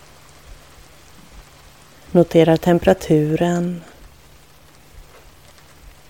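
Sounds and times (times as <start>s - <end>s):
steady rain falling: 0.0s - 6.0s
speech: 2.1s - 3.9s.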